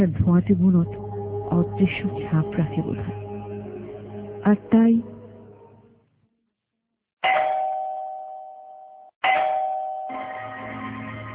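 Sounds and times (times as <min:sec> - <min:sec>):
speech: 0:00.0 - 0:03.2, 0:04.4 - 0:05.1
electronic doorbell chimes ringing at night: 0:07.3 - 0:10.7.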